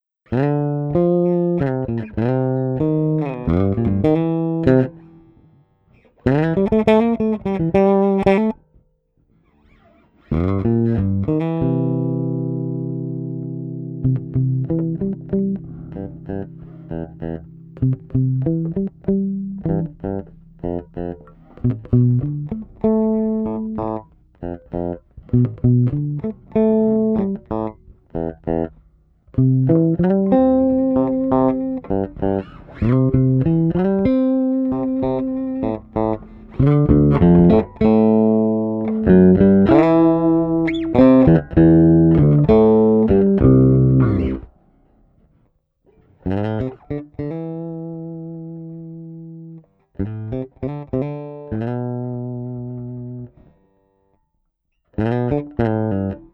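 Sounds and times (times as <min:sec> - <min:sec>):
blues lead playing: 0:00.0 - 0:08.6, 0:09.5 - 0:44.6, 0:46.1 - 0:53.8, 0:55.0 - 0:56.3.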